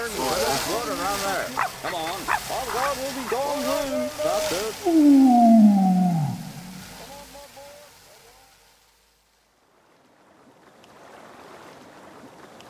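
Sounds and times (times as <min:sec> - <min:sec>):
tide washing into a bay: 0:00.0 - 0:07.3
loud falling vocal-like tone: 0:04.7 - 0:07.2
wavering hums: 0:04.8 - 0:07.1.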